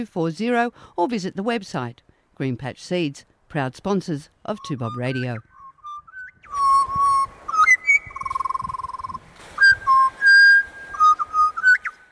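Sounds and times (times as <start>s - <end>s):
speech: 0.0s - 5.5s
person whistling a warbling magpie imitation: 4.6s - 12.0s.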